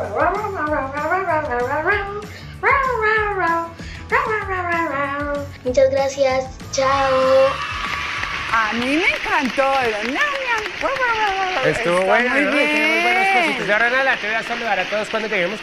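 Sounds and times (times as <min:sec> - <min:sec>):
child imitating a barking dog: 0:00.2 - 0:05.9
speech: 0:06.2 - 0:07.7, 0:08.7 - 0:10.9, 0:11.6 - 0:15.6.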